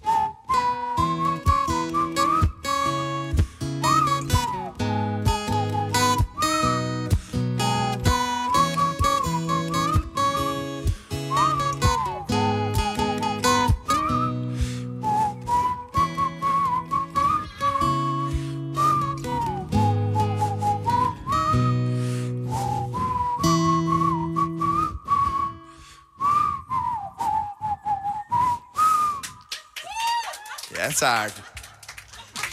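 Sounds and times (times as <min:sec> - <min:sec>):
people whistling a melody together: 0:00.0 - 0:30.2
instrumental backing with sustained chords and percussive accents: 0:00.4 - 0:25.1
laughter: 0:29.4 - 0:32.5
speech: 0:31.0 - 0:31.4.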